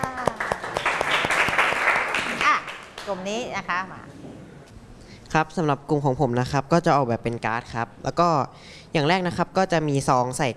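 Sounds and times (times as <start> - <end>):
small group clapping in applause: 0.0 - 3.3
speech: 3.1 - 4.2, 5.3 - 10.5.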